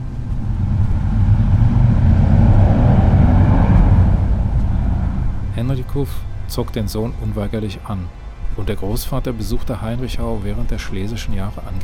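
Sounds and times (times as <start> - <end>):
very loud motorcycle roaring past a house in Wolfsburg: 0.0 - 6.8
speech: 6.0 - 11.8.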